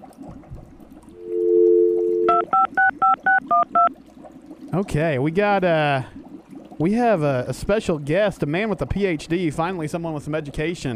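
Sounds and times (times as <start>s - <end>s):
steady telephone dial tone: 1.2s - 3.9s
speech: 4.7s - 6.2s, 6.8s - 10.9s.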